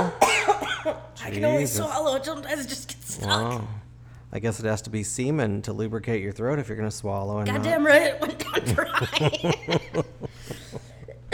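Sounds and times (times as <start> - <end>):
woman coughing in harsh repeated bursts: 0.0 - 1.5, 7.5 - 10.0, 11.1 - 11.3
speech: 0.9 - 10.6
laughter: 8.2 - 11.2.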